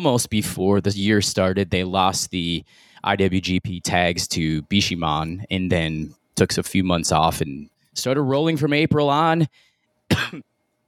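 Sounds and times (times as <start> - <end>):
speech: 0.0 - 10.5
short rough cough: 10.1 - 10.6.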